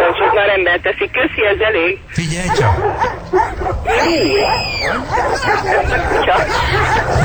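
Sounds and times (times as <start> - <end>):
dog barking and yipping: 0.0 - 0.7, 2.2 - 7.2
laughter: 0.0 - 7.2
speech: 0.4 - 7.2.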